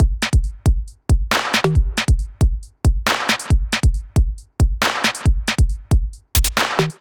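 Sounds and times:
basic MIDI drum kit: 0.0s - 6.9s.

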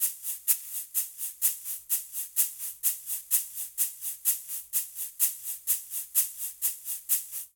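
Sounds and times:
cha-cha-cha shaker rhythm in Latin percussion: 0.0s - 7.5s.

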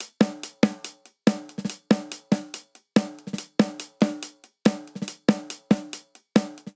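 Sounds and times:
syncopated folk hi-hat: 0.0s - 6.7s
syncopated folk snare drum: 0.0s - 6.7s.

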